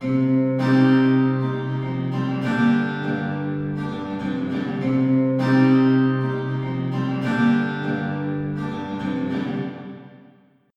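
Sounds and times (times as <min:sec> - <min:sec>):
acoustic guitar with medium dark plate reverb: 0:00.0 - 0:10.7.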